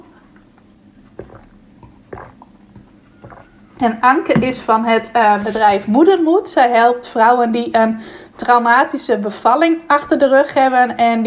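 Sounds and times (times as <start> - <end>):
soft gulps of water: 0.0 - 3.8
person sipping water: 0.3 - 3.8
small wet mouth clicks: 1.2 - 3.5
speech: 3.8 - 11.2.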